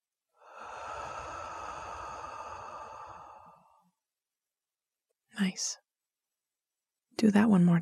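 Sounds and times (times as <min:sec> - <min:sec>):
slow deep breath in through nose and out through mouth: 0:00.3 - 0:04.1
speech: 0:05.4 - 0:05.8, 0:07.2 - 0:07.8.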